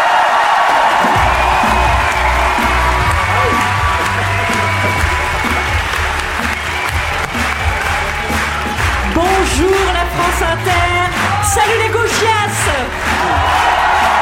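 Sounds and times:
crowd cheering and whooping: 0:00.0 - 0:09.7, 0:12.8 - 0:14.2
applause from a large audience: 0:00.0 - 0:14.2.

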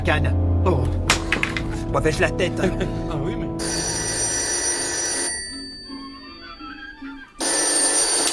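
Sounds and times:
speech: 0:00.0 - 0:01.3, 0:01.9 - 0:03.4
old telephone bell ringing with a harsh metallic jangle: 0:03.6 - 0:08.3.

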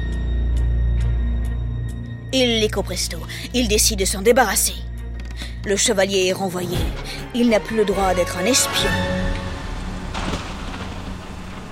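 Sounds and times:
low sustained drone-like hum: 0:00.0 - 0:05.8, 0:06.9 - 0:11.7
speech: 0:02.3 - 0:04.9, 0:05.6 - 0:09.2
steady rain falling: 0:08.6 - 0:11.7.

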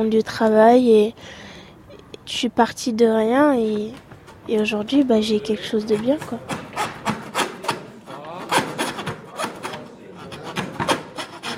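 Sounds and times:
speech: 0:00.0 - 0:01.5, 0:02.3 - 0:06.6
hand saw rasping through wood: 0:05.8 - 0:11.5.

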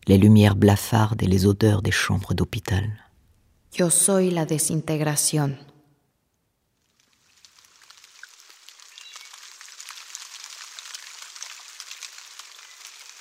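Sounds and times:
speech: 0:00.1 - 0:03.0, 0:03.7 - 0:05.7
steady dense rain falling: 0:06.8 - 0:13.2.

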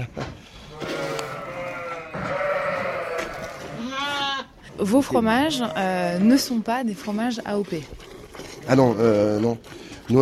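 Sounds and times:
flock of ewes bleating on high mountain summer pasture: 0:00.8 - 0:04.6
speech: 0:04.8 - 0:08.1, 0:08.7 - 0:10.1.

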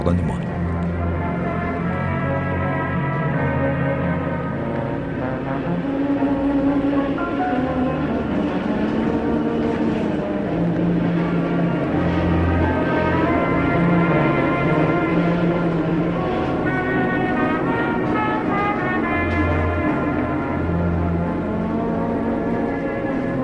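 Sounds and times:
distant metro trains rumbling: 0:00.0 - 0:23.4
speech: 0:00.1 - 0:00.5.

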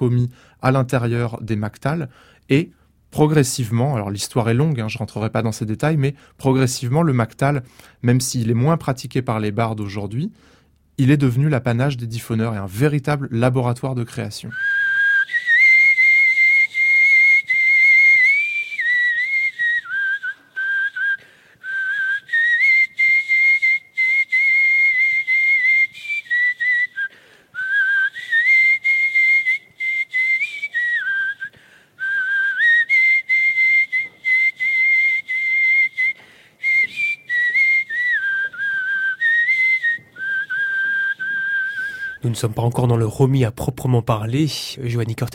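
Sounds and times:
speech: 0:00.0 - 0:15.4, 0:42.3 - 0:45.3
breaths: 0:00.3 - 0:00.6, 0:02.1 - 0:03.0, 0:06.1 - 0:06.4, 0:07.6 - 0:08.0, 0:10.3 - 0:10.9, 0:21.2 - 0:21.7, 0:27.0 - 0:27.6, 0:31.5 - 0:32.0, 0:36.2 - 0:36.6, 0:41.7 - 0:42.2
traditional shepherd's whistle melody: 0:14.6 - 0:42.2.

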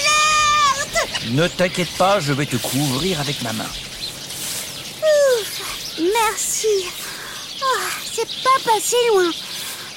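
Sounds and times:
birds chirping: 0:00.0 - 0:09.9
speech: 0:01.3 - 0:03.9, 0:06.0 - 0:07.0, 0:07.6 - 0:09.5.

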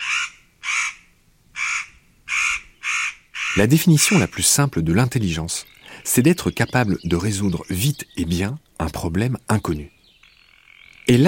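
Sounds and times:
crow cawing in harsh raspy bursts: 0:00.0 - 0:04.3
speech: 0:03.6 - 0:10.0, 0:11.1 - 0:11.2.

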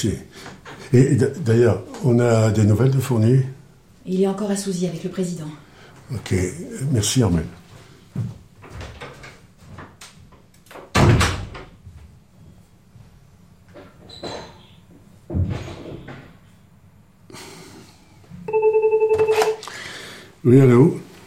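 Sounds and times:
speech: 0:00.0 - 0:07.6, 0:08.2 - 0:08.4, 0:20.4 - 0:21.0
desk telephone giving a short electronic ring: 0:18.5 - 0:19.6.

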